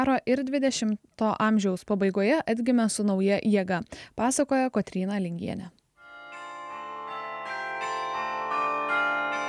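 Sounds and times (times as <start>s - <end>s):
speech: 0.0s - 5.8s
carillon bells ringing over a city in Gdańsk, Poland: 6.0s - 9.4s.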